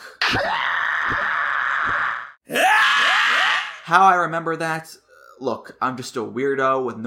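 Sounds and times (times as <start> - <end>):
harsh vocal cry: 0.1 - 3.9
loud raw scream in a theme song: 0.2 - 3.9
speech: 0.3 - 1.2, 3.9 - 7.0.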